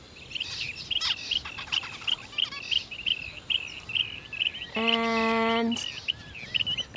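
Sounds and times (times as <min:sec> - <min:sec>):
zebra finch flock chirping in bushes: 0:00.0 - 0:06.9
speech: 0:04.8 - 0:06.0.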